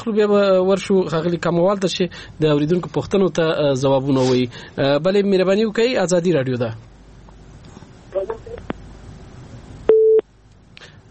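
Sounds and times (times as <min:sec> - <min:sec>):
speech: 0:00.0 - 0:06.9
telephone busy tone after disconnected call: 0:09.9 - 0:10.2.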